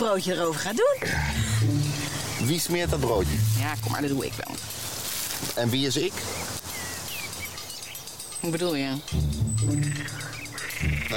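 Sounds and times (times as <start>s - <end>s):
speech: 0.0s - 1.8s, 2.4s - 4.9s, 5.5s - 6.5s, 8.4s - 11.1s
frog croaking in low buzzing pulses: 9.7s - 11.1s.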